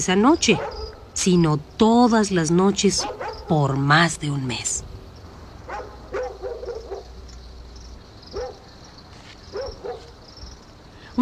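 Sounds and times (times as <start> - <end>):
speech: 0.0 - 4.9
steady low hum: 0.0 - 11.2
dogs barking: 0.3 - 1.3, 2.8 - 3.8, 5.5 - 10.8.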